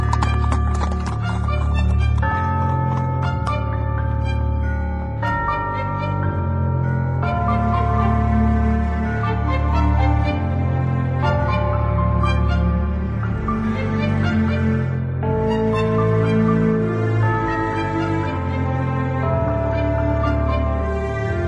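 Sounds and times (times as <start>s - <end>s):
horses drawing a covered carriage galloping: 0.0s - 3.2s
sustained musical backdrop: 0.0s - 21.4s.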